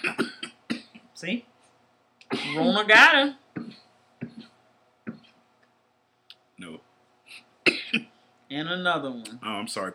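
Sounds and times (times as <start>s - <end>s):
speech: 0.0s - 0.3s, 1.2s - 1.5s, 2.3s - 3.4s, 8.5s - 9.9s
short dry coughs: 0.0s - 1.1s, 2.3s - 2.7s, 7.3s - 8.1s.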